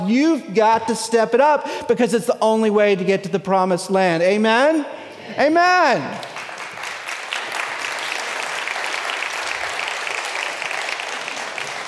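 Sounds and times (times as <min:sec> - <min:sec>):
speech: 0:00.1 - 0:06.3
audience applause: 0:06.2 - 0:11.8.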